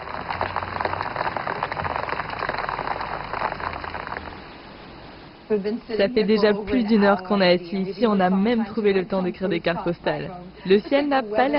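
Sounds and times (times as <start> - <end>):
steady rain falling: 0.0 - 5.4
speech: 5.5 - 11.5.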